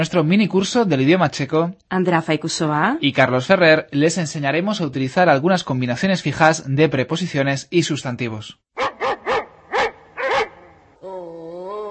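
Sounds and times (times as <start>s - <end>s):
speech: 0.0s - 8.8s
dog barking in sharp loud bursts: 8.8s - 10.9s
dog whining: 8.8s - 11.8s.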